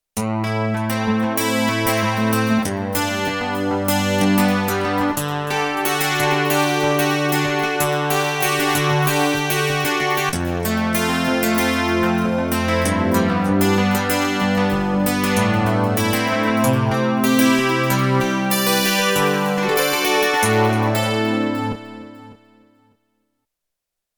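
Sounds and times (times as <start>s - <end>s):
MIDI guitar factory patch on Roland JD-800 synthesizer: 0.2s - 22.8s.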